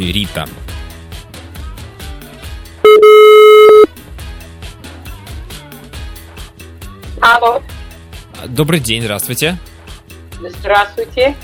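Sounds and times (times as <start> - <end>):
speech: 0.0 - 0.7, 7.3 - 7.8, 8.4 - 9.7, 10.4 - 11.4
telephone line tone as a number is dialled: 2.9 - 3.9.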